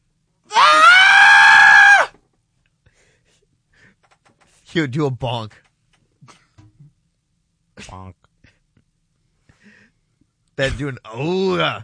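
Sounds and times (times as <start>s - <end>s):
person imitating a distressed high-pitched scream: 0.5s - 2.1s
speech: 4.8s - 5.7s, 10.6s - 11.8s.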